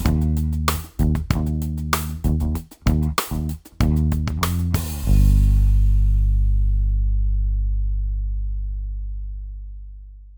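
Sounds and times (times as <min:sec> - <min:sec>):
50 Hz hum in music: 0:00.1 - 0:10.3.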